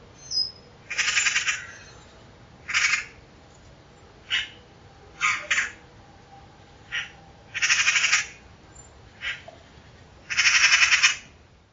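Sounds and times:
harsh raspy pulsed bird calls: 0.2 - 3.2, 4.3 - 4.6, 5.2 - 5.8, 6.9 - 8.4, 9.2 - 11.3.

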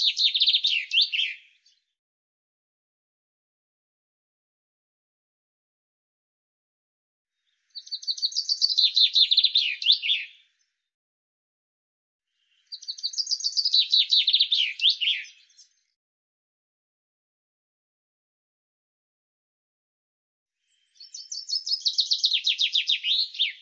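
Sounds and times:
Common chaffinch song: 0.0 - 1.9, 7.4 - 10.8, 12.4 - 16.0, 20.6 - 23.6.

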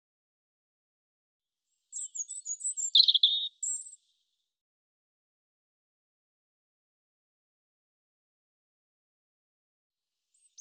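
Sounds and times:
European robin singing: 1.9 - 4.2, 10.4 - 10.5.

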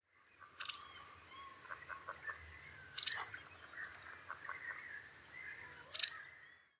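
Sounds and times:
soft bird chirps and whistled notes: 0.6 - 1.8, 2.9 - 4.7, 5.4 - 6.7.

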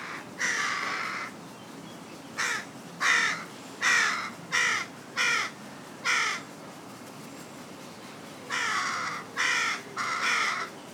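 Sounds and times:
carrion crow Corvus corone cawing: 0.0 - 1.3, 2.4 - 5.5, 8.5 - 10.9.

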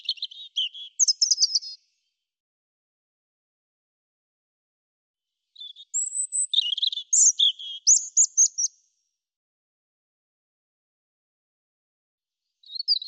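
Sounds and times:
European robin singing warbling phrases of thin whistles and trills: 0.0 - 1.9, 5.6 - 8.8, 12.6 - 13.0.

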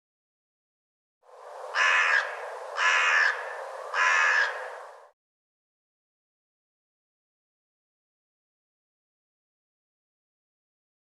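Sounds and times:
bird cawing harshly: 1.7 - 5.1.

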